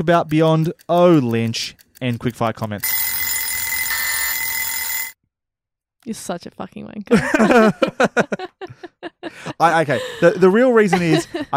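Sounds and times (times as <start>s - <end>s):
speech: 0.0s - 3.0s, 6.0s - 11.5s
loud electronic buzzer with strong harmonics: 2.9s - 5.2s
laughter: 7.1s - 11.5s.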